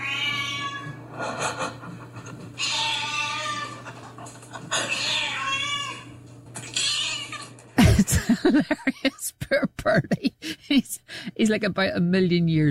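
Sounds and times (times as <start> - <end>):
cat meowing to be fed: 0.0 - 1.0, 2.6 - 3.8, 4.9 - 6.1, 6.7 - 7.5
low hum: 0.0 - 12.6
laughter: 1.2 - 2.5, 3.6 - 5.0, 7.8 - 11.0
speech: 8.5 - 12.6.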